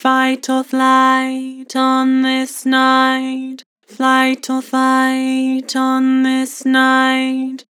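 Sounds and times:
flat vocals: 0:00.0 - 0:07.6.

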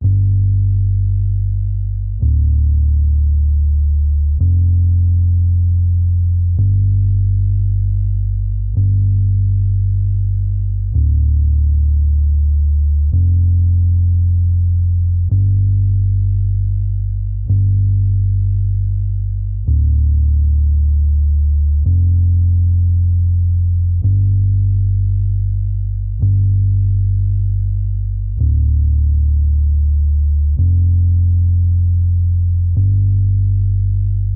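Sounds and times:
bass line in G minor at 110 BPM: 0:00.0 - 0:34.3.

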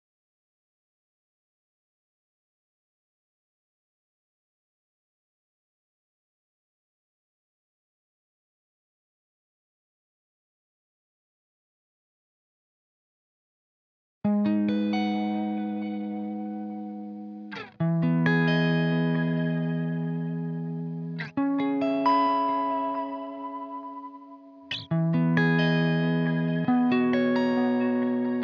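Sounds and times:
135 BPM G# minor high guitar loop: 0:14.3 - 0:28.4.

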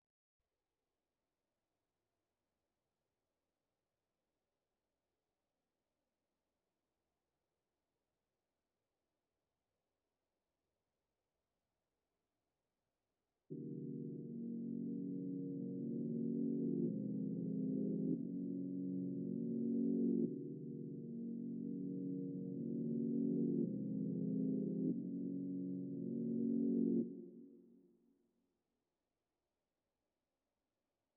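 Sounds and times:
low piano melody loop in A sharp minor, RnB: 0:13.5 - 0:27.3.

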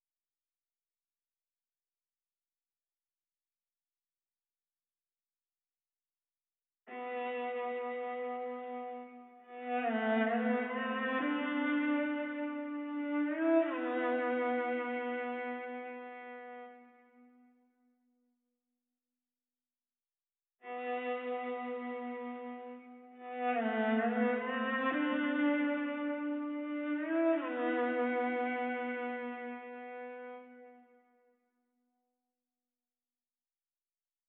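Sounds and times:
viola in A minor: 0:06.9 - 0:17.3, 0:20.6 - 0:31.0.

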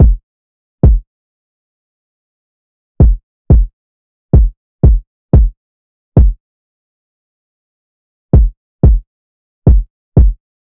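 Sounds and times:
kick drum loop at 90 BPM: 0:00.0 - 0:00.2, 0:00.8 - 0:01.0, 0:03.0 - 0:03.7, 0:04.4 - 0:05.6, 0:06.2 - 0:06.4, 0:08.4 - 0:09.1, 0:09.7 - 0:10.4.

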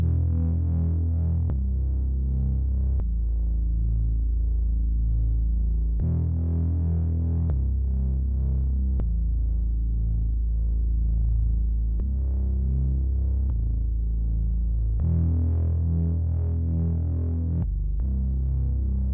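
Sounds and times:
bass loop in E minor at 80 BPM: 0:00.0 - 0:19.1.

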